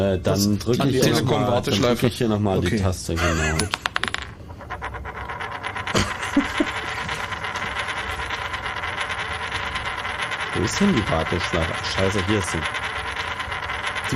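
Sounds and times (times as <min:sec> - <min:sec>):
speech: 0:00.0 - 0:03.8, 0:10.6 - 0:12.8
laughter: 0:03.2 - 0:03.7, 0:06.0 - 0:06.8
flipped coin spinning: 0:03.2 - 0:14.1.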